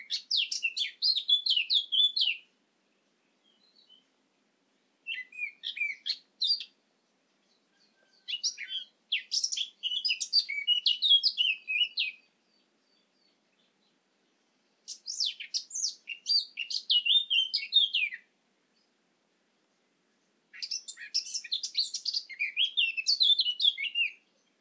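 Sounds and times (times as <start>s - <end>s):
Eurasian blackcap Sylvia atricapilla singing chattering and whistled notes: 0.0s - 4.2s, 5.0s - 19.0s, 20.1s - 24.5s.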